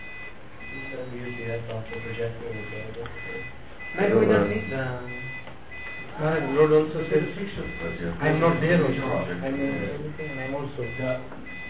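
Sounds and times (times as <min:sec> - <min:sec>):
electronic device beeping after a power cut: 0:00.0 - 0:06.6, 0:07.6 - 0:08.6, 0:09.5 - 0:11.6
low hum: 0:00.0 - 0:11.6
speech: 0:01.6 - 0:05.2, 0:06.2 - 0:11.5.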